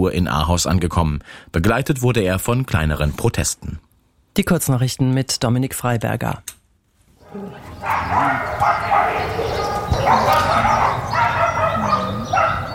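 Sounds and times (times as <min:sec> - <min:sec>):
speech: 0:00.0 - 0:06.6
many dogs barking and yelping in shelter kennels: 0:07.2 - 0:12.7.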